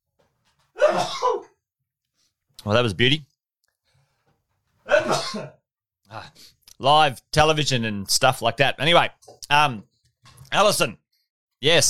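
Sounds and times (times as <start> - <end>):
person sneezing: 0.8 - 1.6, 4.9 - 5.6
speech: 2.6 - 3.3, 5.3 - 11.0, 11.6 - 11.8.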